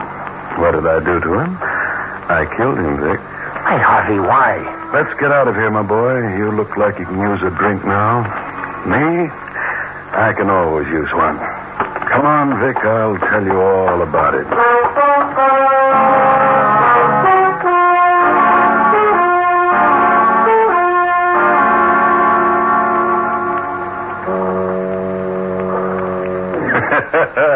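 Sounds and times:
speech: 0.6 - 9.4, 10.1 - 11.5, 12.2 - 16.2, 27.1 - 27.5
foghorns sounding at a waterfront bar: 4.0 - 8.2, 14.2 - 26.7
laughter: 26.5 - 27.5.

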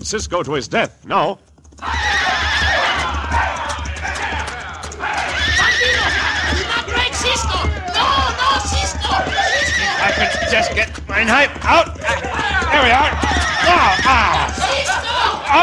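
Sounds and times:
speech: 0.0 - 2.0, 10.0 - 14.5
galloping horse hooves: 0.3 - 15.6
horse neighing: 5.1 - 6.9, 9.0 - 11.0, 12.6 - 15.6.

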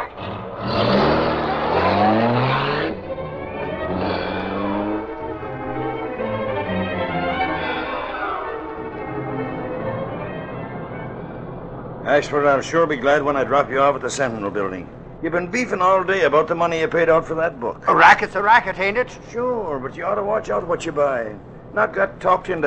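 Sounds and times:
car engine revving and accelerating away: 0.0 - 17.9
speech: 12.2 - 22.6.

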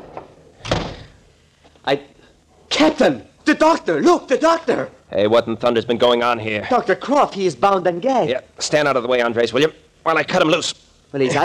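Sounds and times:
door shutting thump: 0.0 - 1.1
speech: 1.8 - 2.2, 2.8 - 11.4.

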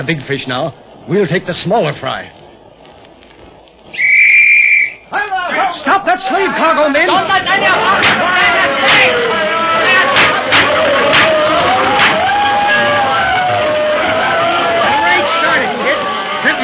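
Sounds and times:
speech: 0.0 - 2.4, 6.0 - 9.2
large crowd cheering while watching a fight: 3.9 - 16.6
sharp shouts and whoops: 8.2 - 16.6.

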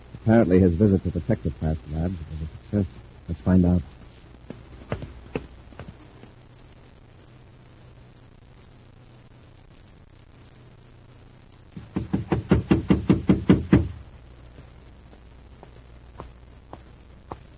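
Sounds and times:
low steady hum: 0.0 - 17.5
speech: 0.2 - 4.0
hurried footsteps of a man approaching around a corner: 4.0 - 6.3, 15.6 - 17.5.

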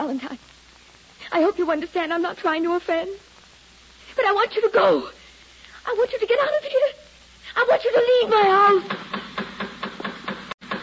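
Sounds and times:
speech: 0.1 - 0.6, 1.3 - 3.3, 4.2 - 5.2, 5.8 - 7.0, 7.6 - 9.2
knocking on a door: 8.8 - 10.8.

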